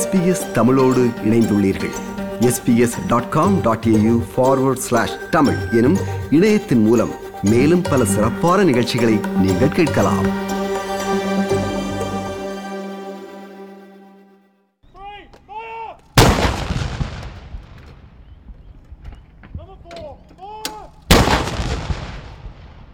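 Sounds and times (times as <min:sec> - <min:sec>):
sustained tone: 0:00.0 - 0:14.6
speech: 0:00.1 - 0:10.5
heavy cannon booms from a ceremonial gun salute: 0:16.2 - 0:18.2, 0:21.1 - 0:22.9.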